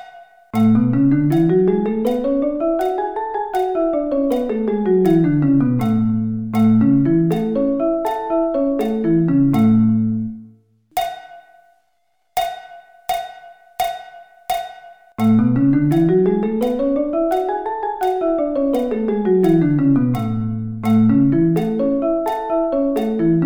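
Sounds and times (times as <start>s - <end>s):
A musical scale: 0.6s - 10.5s, 15.2s - 23.4s.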